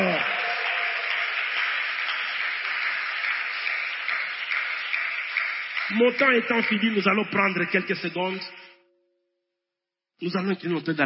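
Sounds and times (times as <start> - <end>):
congregation cheering: 0.0 - 8.4
church congregation applauding during an Easter service: 0.0 - 8.7
speech: 5.9 - 8.6, 10.2 - 11.0.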